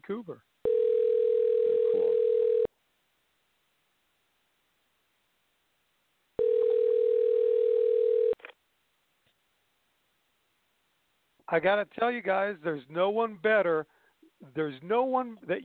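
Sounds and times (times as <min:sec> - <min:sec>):
speech: 0:00.0 - 0:00.5, 0:11.5 - 0:15.6
telephone tone while a call is placed: 0:00.6 - 0:02.7, 0:06.4 - 0:08.5.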